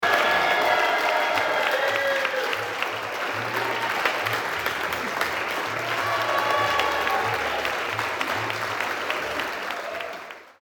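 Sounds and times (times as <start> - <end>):
people applauding: 0.0 - 10.6.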